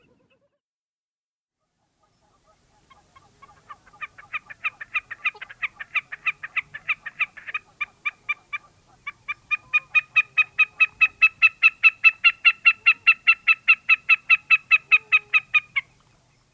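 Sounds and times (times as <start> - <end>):
Wilson's snipe calling: 2.9 - 15.9.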